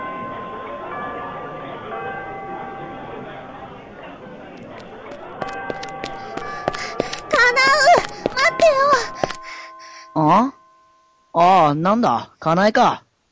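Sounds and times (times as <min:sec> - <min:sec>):
footsteps running along a hard school hallway floor: 0:05.4 - 0:09.5
speech: 0:11.4 - 0:13.0.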